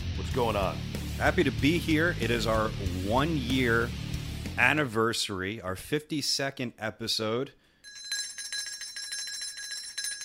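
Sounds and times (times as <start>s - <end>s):
speech: 0.3s - 4.0s, 4.6s - 7.6s
small bright bell ringing rapidly: 7.8s - 10.2s.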